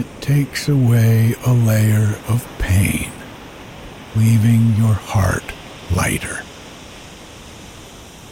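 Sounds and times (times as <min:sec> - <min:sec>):
ocean waves washing onto shore: 0:00.0 - 0:08.2
speech: 0:00.3 - 0:03.2, 0:04.2 - 0:06.5.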